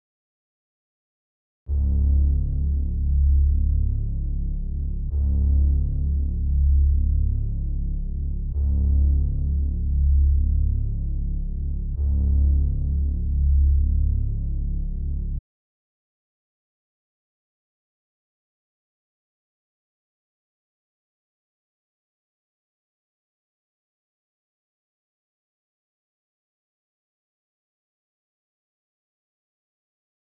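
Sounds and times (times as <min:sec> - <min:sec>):
bass loop in C sharp minor: 0:01.7 - 0:15.4.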